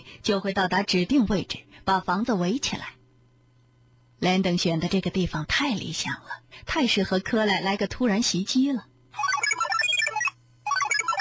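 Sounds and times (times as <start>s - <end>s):
speech: 0.1s - 3.0s, 4.2s - 9.3s
mobile phone ringing with a bright melodic electronic ringtone: 9.2s - 11.1s.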